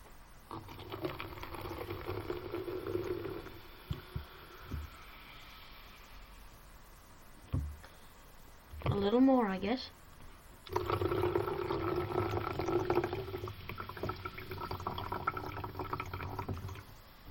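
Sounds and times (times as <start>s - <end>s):
soda pouring in a steady stream and fizzing: 0.5s - 6.3s, 10.7s - 17.2s
soft thumps: 3.9s - 5.0s, 7.4s - 8.0s
knock: 7.5s - 7.8s
speech: 9.0s - 10.0s.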